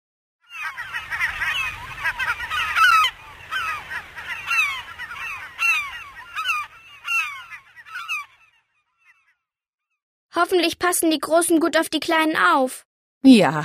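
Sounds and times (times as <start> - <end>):
penguin colony calling with harsh honking brays: 0.5 - 9.2
speech: 10.4 - 13.6.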